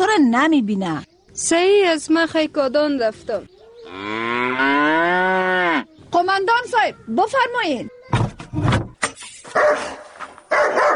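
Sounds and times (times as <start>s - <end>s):
speech: 0.2s - 5.1s, 6.1s - 8.7s
dog barking: 9.5s - 10.9s.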